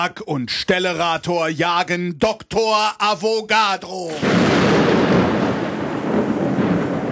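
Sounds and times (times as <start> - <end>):
speech: 0.0 - 5.4
thunder sound effect rumbling: 4.0 - 7.1.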